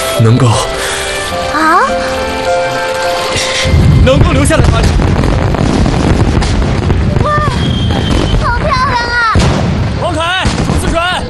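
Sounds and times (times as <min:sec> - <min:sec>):
speech: 0:00.2 - 0:00.8, 0:04.1 - 0:05.0
dense barrage of fireworks bursting: 0:01.1 - 0:11.2
shrill whistling tones: 0:07.5 - 0:08.4.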